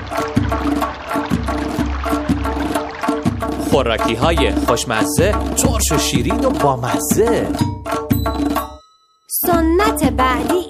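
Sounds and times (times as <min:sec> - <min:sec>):
soft splashes of sprouted greens bundles tossed into flowing water: 0:00.0 - 0:07.2
running water of a clean flowing stream: 0:00.0 - 0:07.7
speech: 0:03.7 - 0:08.6, 0:09.6 - 0:10.6.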